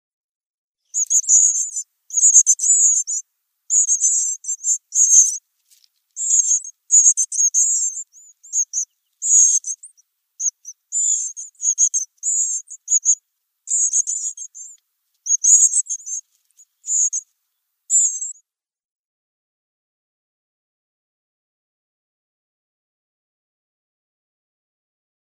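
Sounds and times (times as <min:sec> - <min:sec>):
Yellowhammer nestling: 0:00.9 - 0:17.2, 0:17.9 - 0:18.4.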